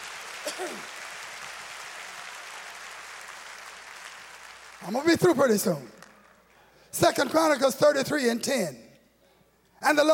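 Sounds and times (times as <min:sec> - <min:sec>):
audience clapping: 0:00.0 - 0:06.6
speech: 0:00.5 - 0:01.0, 0:04.8 - 0:06.0, 0:07.0 - 0:08.8, 0:09.8 - 0:10.1.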